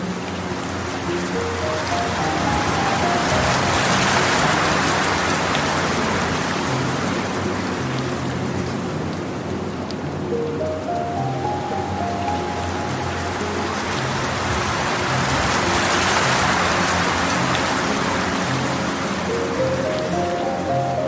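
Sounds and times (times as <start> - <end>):
low drones: 0.0 - 21.0
soft rising piano notes: 0.0 - 21.0
steady rain hiss: 0.0 - 21.0.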